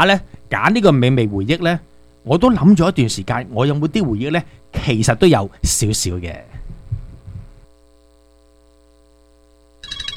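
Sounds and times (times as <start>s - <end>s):
speech: 0.0s - 6.6s
low thumping: 6.6s - 7.7s
incoming video call ringtone as a steady electronic tone: 9.8s - 10.1s.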